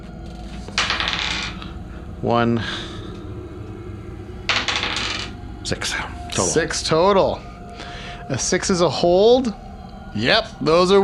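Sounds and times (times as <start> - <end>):
two small dice rolled across a hard surface for a stability test: 0.7 - 1.7, 4.5 - 5.4
speech: 2.2 - 2.9, 5.7 - 7.5, 8.3 - 9.6, 10.2 - 11.0.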